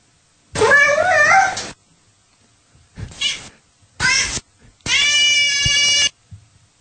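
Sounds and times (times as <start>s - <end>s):
cat meows played back in a voice app: 0.6s - 1.7s, 3.2s - 6.1s.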